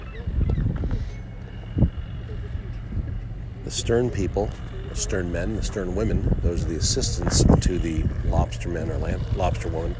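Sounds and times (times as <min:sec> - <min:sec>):
faint bird calls: 0:00.0 - 0:02.9
indistinct voices murmuring: 0:00.0 - 0:09.9
steady low engine-like rumble at a waterfront: 0:00.0 - 0:09.9
speech: 0:03.7 - 0:09.9.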